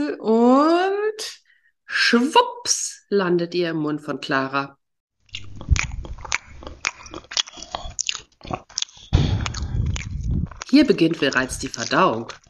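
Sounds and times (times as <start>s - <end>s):
speech: 0.1s - 0.4s, 2.1s - 4.8s, 10.8s - 12.4s
crunchy biting of food: 5.3s - 12.4s
wet chewing of food: 5.3s - 12.4s.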